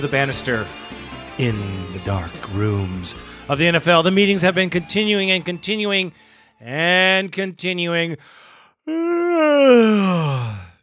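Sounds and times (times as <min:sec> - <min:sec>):
speech: 0:00.0 - 0:10.6
exaggerated yawn: 0:08.8 - 0:10.8.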